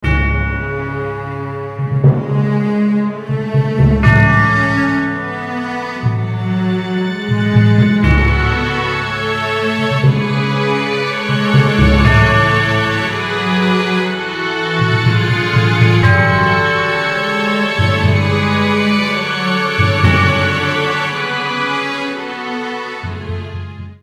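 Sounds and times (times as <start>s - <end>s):
dramatic film score: 0.1s - 24.0s.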